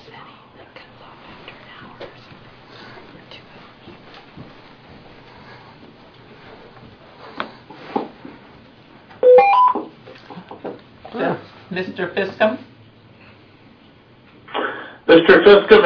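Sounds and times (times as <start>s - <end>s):
noise: 0.0s - 15.8s
telephone dialing tones: 9.2s - 9.8s
speech: 11.7s - 12.7s, 15.3s - 15.8s.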